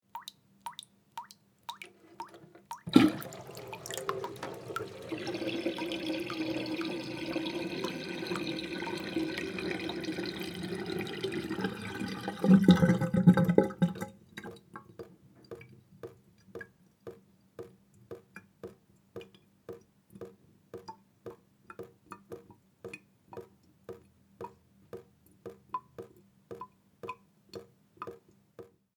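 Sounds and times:
water dripping: 0:00.0 - 0:28.8
water draining: 0:00.2 - 0:19.3.

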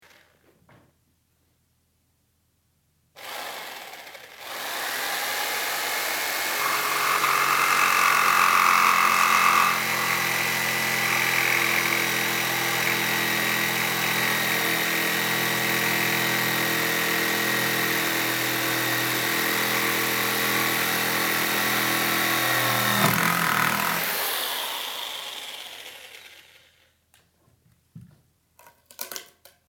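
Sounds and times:
jigsaw sawing: 0:00.0 - 0:00.4, 0:03.2 - 0:26.9.

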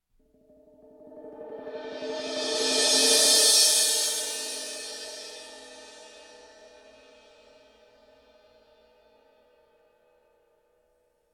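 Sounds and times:
cymbal roll: 0:01.3 - 0:07.4.

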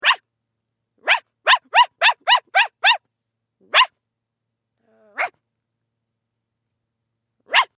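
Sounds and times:
person barking: 0:01.0 - 0:03.0, 0:03.7 - 0:03.9, 0:04.9 - 0:05.3, 0:07.5 - 0:07.7.

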